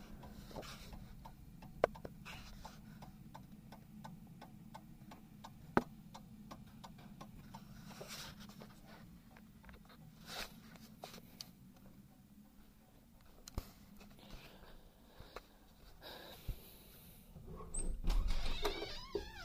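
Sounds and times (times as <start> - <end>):
mechanical clock ticking: 0.0 - 7.7
low hum: 0.0 - 19.4.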